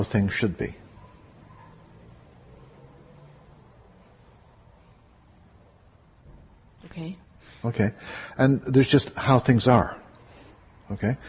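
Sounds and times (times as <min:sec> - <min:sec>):
speech: 0:00.0 - 0:00.8, 0:07.0 - 0:10.0, 0:10.9 - 0:11.2
faint traffic noise from outside: 0:00.0 - 0:11.2
car passing by outside: 0:01.2 - 0:05.2.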